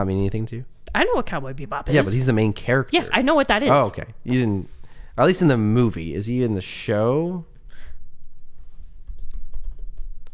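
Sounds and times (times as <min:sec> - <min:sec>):
speech: 0:00.0 - 0:07.5
furious typing on a computer keyboard: 0:09.1 - 0:10.3.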